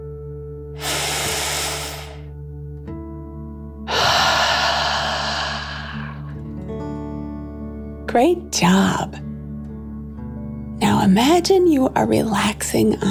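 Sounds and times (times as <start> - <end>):
deep breath in through nose and out through mouth: 0.8 - 2.3, 3.9 - 6.5
soft steady musical drone: 3.9 - 7.2
speech: 8.1 - 9.3, 11.0 - 13.0.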